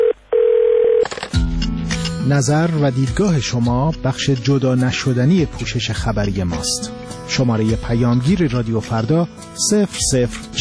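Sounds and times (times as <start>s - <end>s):
telephone line tone of a call being dialled: 0.0s - 1.1s
speech: 2.2s - 10.5s.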